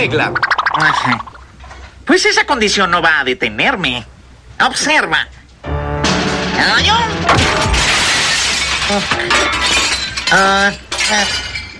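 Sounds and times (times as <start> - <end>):
speech: 0.0 - 1.3, 2.1 - 5.4, 6.6 - 7.8, 8.9 - 9.6, 10.3 - 11.4
crackling debris of a breaking camera: 6.0 - 11.7
glass shattering as a camera breaks: 6.0 - 11.7.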